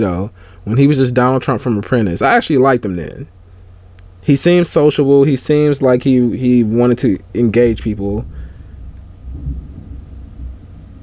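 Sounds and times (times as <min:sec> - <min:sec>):
speech: 0:00.0 - 0:03.4, 0:04.2 - 0:08.4
low rumbling thunder: 0:07.5 - 0:11.0.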